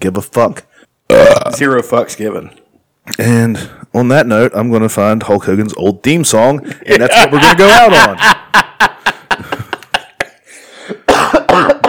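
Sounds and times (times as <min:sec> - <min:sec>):
speech: 0:00.0 - 0:09.0
laughter: 0:06.6 - 0:10.5
person coughing: 0:10.9 - 0:11.8.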